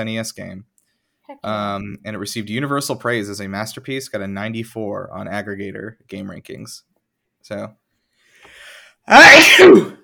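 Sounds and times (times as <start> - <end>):
speech: 0.0 - 0.7, 1.3 - 7.8, 8.5 - 10.0
person sneezing: 9.1 - 10.0.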